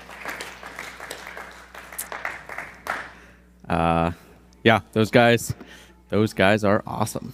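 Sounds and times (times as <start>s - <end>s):
crowd applauding: 0.0s - 3.3s
speech: 3.7s - 7.3s.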